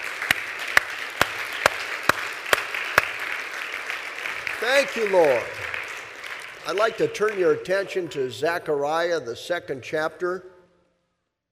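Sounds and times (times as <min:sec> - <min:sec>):
audience applauding for teachers: 0:00.0 - 0:08.3
speech: 0:04.6 - 0:05.7, 0:06.6 - 0:10.5.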